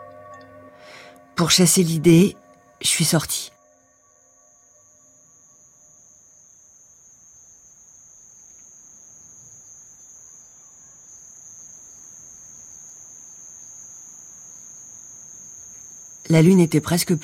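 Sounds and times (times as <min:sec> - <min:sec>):
chorus of crickets chirping at night: 0:00.0 - 0:17.2
speech: 0:01.4 - 0:03.6, 0:16.3 - 0:17.2.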